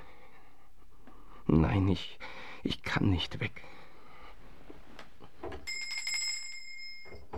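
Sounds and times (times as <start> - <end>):
speech: 1.5 - 3.8
hand bell rung to summon a servant in a grand house: 5.7 - 7.2.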